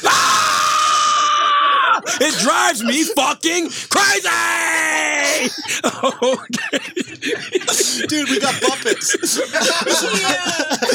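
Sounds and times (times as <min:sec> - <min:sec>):
person screaming: 0:00.0 - 0:02.5, 0:04.0 - 0:05.6
laughter: 0:01.0 - 0:03.7, 0:04.6 - 0:10.9
speech: 0:02.2 - 0:10.9.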